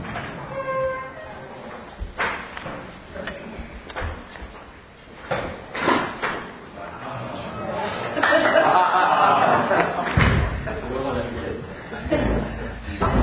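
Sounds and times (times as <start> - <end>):
door handle creak and rattle: 0.1 - 1.5
laughter: 7.7 - 13.2.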